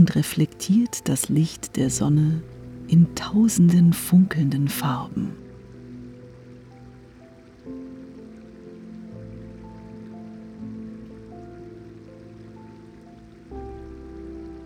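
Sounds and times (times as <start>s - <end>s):
speech: 0.0s - 5.4s
brook babbling and trickling over stones: 0.0s - 14.6s
soft sustained musical tones shifting chords: 0.0s - 14.6s.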